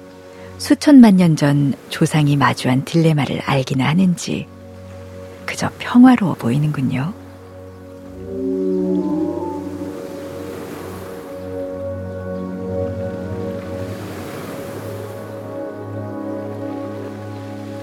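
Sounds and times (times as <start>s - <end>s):
speech: 0.6s - 4.6s, 5.6s - 7.2s
ocean surf: 8.0s - 11.8s, 13.1s - 17.8s
whale calls: 8.0s - 11.8s.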